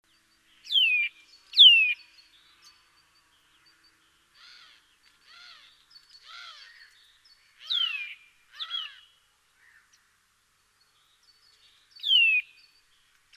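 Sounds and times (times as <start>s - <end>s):
Eurasian nuthatch Sitta europaea piping downward-sweeping whistles: 0.6s - 2.1s, 12.0s - 12.8s.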